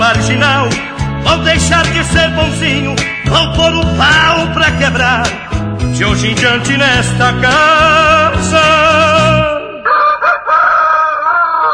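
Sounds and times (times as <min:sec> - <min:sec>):
speech: 0:00.3 - 0:09.3
rooster crowing in a long drawn-out call: 0:09.8 - 0:11.7.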